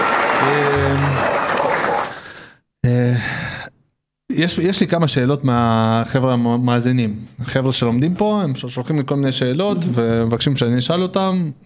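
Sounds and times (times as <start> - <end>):
crowd applause mixed with cheering voices: 0.0 - 2.4
speech: 4.4 - 11.6.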